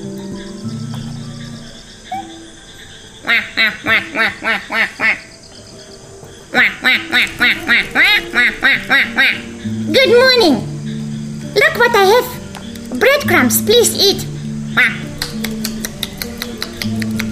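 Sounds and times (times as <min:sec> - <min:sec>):
duck quacking: 0:01.9 - 0:05.4, 0:06.5 - 0:11.0, 0:11.6 - 0:17.3
speech: 0:03.3 - 0:05.2, 0:06.5 - 0:10.7, 0:11.6 - 0:15.0.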